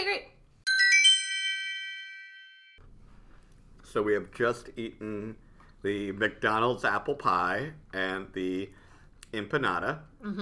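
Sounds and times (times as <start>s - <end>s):
bright chime ringing: 0.7s - 2.8s
speech: 3.9s - 10.4s.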